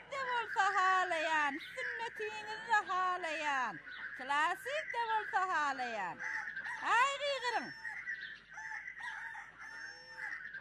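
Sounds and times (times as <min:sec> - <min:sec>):
speech: 0:00.7 - 0:07.8
rooster crowing: 0:06.2 - 0:10.6.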